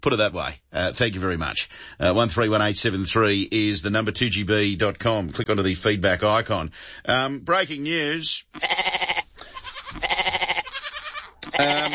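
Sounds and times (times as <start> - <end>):
speech: 0.0 - 9.0, 11.6 - 11.9
goat bleating with long quavering cries: 8.5 - 11.9.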